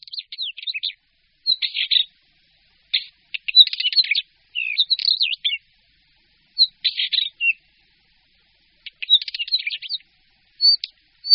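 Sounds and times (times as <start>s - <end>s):
northern wheatear singing scratchy phrases: 0.0s - 2.2s, 2.9s - 5.7s, 6.5s - 8.0s, 8.8s - 11.3s.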